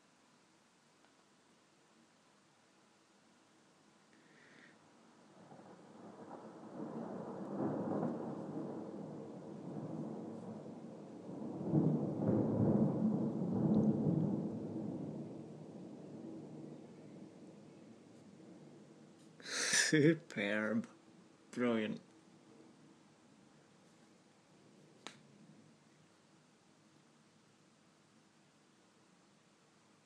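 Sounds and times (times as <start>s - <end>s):
light rain: 0.0s - 30.0s
thunder rumbling: 5.3s - 20.7s
speech: 19.9s - 21.0s, 21.6s - 22.1s.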